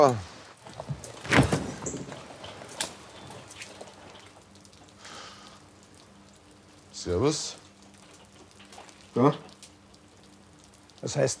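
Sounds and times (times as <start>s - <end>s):
speech: 0.0s - 0.3s, 7.0s - 7.6s, 9.2s - 9.5s, 11.0s - 11.3s
door opening with a clunk and rattle: 0.9s - 2.2s.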